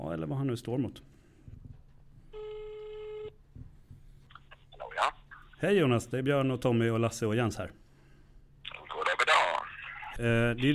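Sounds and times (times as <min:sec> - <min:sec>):
speech: 0:00.2 - 0:01.2, 0:05.6 - 0:07.8, 0:10.2 - 0:10.7
ringback tone of an outgoing phone call: 0:02.3 - 0:03.3.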